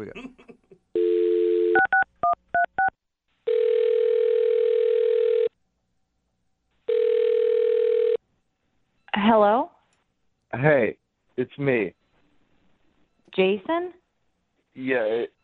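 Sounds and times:
speech: 0.0 - 0.5, 10.6 - 12.0, 13.4 - 14.0, 14.8 - 15.4
telephone dial tone: 1.0 - 2.4, 3.5 - 5.6, 6.9 - 8.2.

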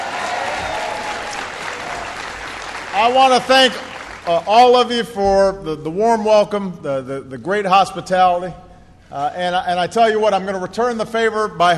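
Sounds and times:
audience applause at an event: 0.0 - 4.7
speech: 3.0 - 11.7.

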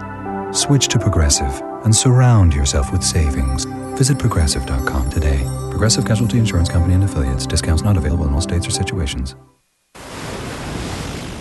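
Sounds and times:
speech: 0.5 - 9.6
ocean waves at sea: 10.0 - 11.4.

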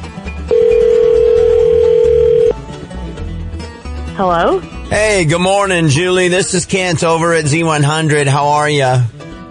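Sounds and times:
telephone dial tone while placing a call: 0.5 - 2.6
speech: 4.2 - 9.2.

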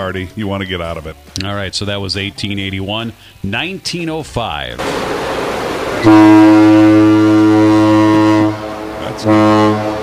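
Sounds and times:
speech: 0.0 - 5.2, 6.0 - 7.4, 9.1 - 10.0
deep loud freighter ship horn blasting: 4.8 - 10.0
second freighter ship horn answering: 6.0 - 10.0.

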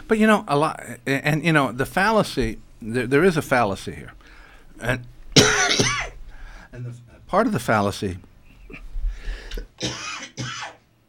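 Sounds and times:
speech: 0.1 - 4.2, 4.8 - 5.9, 6.7 - 8.8, 9.6 - 10.5
harsh raspy lingering cough from illness: 5.4 - 6.2, 9.8 - 10.8.

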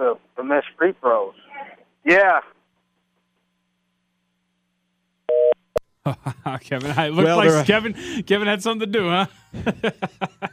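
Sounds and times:
speech: 0.0 - 1.4, 6.6 - 10.4
telephone busy signal two-pitch beep: 5.3 - 5.6
laughter: 6.0 - 8.3, 9.2 - 10.5.

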